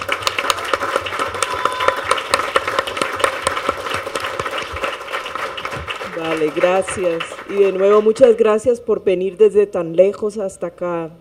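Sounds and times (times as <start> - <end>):
audience applause for a speaker at a public pre-hearing: 0.0 - 8.2
speech: 6.4 - 11.2.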